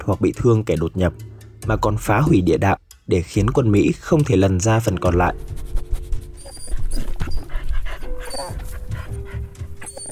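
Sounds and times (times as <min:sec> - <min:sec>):
speech: 0:00.0 - 0:05.6
military service dog panting and sniffing: 0:05.3 - 0:10.1.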